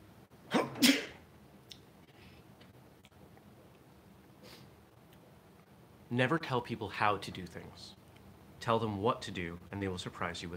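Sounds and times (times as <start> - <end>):
sharp sneeze with breathy intake: 0.5 - 1.2
speech: 6.1 - 8.0, 8.6 - 10.5.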